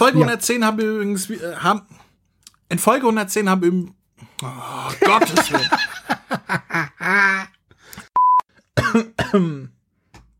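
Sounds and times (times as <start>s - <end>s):
speech: 0.0s - 2.0s, 2.7s - 7.6s, 8.8s - 9.7s
laughter: 4.9s - 7.6s
harsh rough coughing fit: 8.6s - 9.8s.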